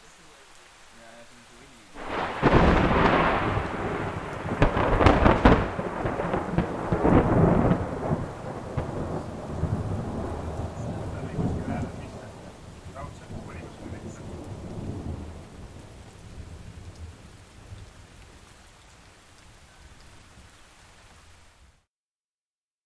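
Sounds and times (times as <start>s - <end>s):
steady rain: 0.0s - 21.9s
thunderclap from a thunderstorm rumbling: 2.0s - 18.5s.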